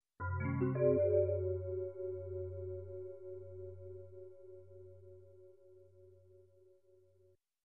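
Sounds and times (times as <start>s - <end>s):
weird and mysterious mallet sound effect: 0.2s - 3.5s.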